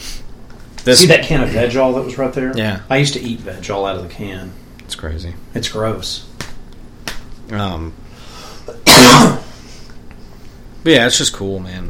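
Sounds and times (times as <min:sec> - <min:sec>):
speech: 0:00.8 - 0:06.3, 0:07.5 - 0:08.0, 0:10.8 - 0:11.8
throat clearing: 0:08.7 - 0:09.5
harsh cough: 0:08.7 - 0:09.6.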